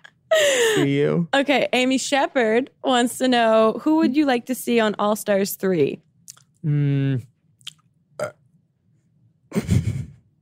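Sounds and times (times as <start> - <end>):
speech: 0.8 - 7.3, 8.2 - 8.4, 9.5 - 9.8
burp: 8.2 - 8.4.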